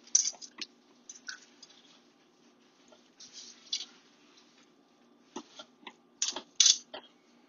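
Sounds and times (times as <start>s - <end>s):
hands kneading butter into wet sticky brioche dough: 0.0s - 7.2s.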